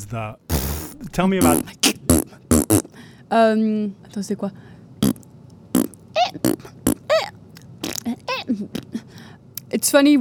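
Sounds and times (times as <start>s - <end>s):
speech: 0.0s - 2.4s, 3.3s - 4.7s, 9.8s - 10.1s
looped fart sounds from a record: 0.5s - 3.0s, 5.0s - 7.1s, 7.8s - 8.2s.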